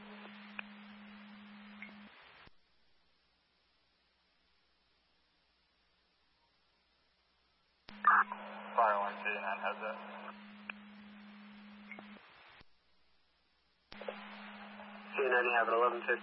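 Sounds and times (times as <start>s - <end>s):
radio static hissing: 0.0s - 2.6s, 7.9s - 13.2s, 13.8s - 16.2s
speech: 9.1s - 10.3s, 15.4s - 16.2s.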